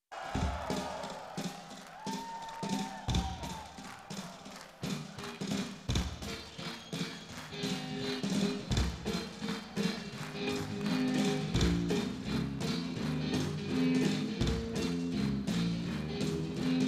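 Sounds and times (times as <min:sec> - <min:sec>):
rock music: 0:00.5 - 0:16.8.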